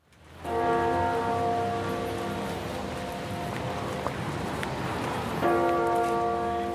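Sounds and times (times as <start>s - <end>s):
outdoor noise: 0.0s - 6.7s
large church bells tolling: 0.4s - 3.6s, 5.4s - 6.7s.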